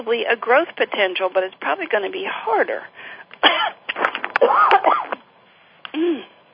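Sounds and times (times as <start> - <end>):
speech: 0.0 - 3.8, 4.4 - 5.0, 6.0 - 6.3
rough coughing: 3.4 - 5.2.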